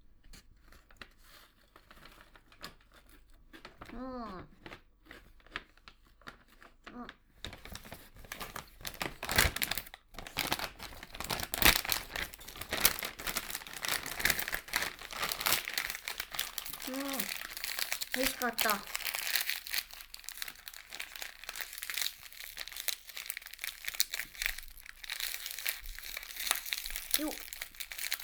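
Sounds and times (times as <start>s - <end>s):
crinkly plastic snack-wrapper trash being twisted and tied up: 0.6s - 28.2s
speech: 3.9s - 4.6s, 18.4s - 19.0s.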